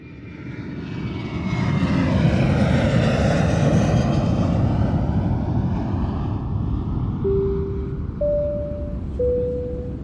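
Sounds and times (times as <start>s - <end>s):
airplane engine drone in the cabin during a flight: 0.0s - 10.0s
brief soft electronic tones: 7.2s - 10.0s.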